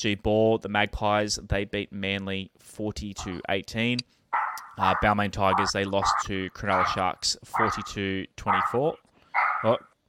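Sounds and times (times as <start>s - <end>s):
speech: 0.0s - 4.2s, 4.8s - 9.9s
dog barking: 4.4s - 7.0s, 7.6s - 8.8s, 9.4s - 9.8s.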